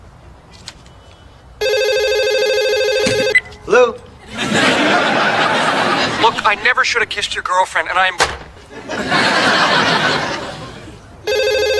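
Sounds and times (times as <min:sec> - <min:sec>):
phone ringing with electronic trill: 0:01.6 - 0:03.6, 0:11.2 - 0:11.7
laughter: 0:04.2 - 0:06.7, 0:08.6 - 0:11.1
speech: 0:06.5 - 0:09.6.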